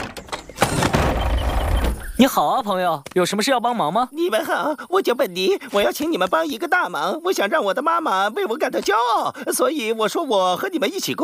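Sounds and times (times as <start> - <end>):
sliding door opening: 0.0 - 2.2
speech: 2.2 - 11.2.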